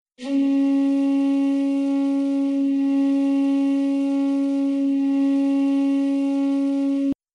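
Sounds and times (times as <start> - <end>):
Japanese bamboo flute: 0.2 - 7.2.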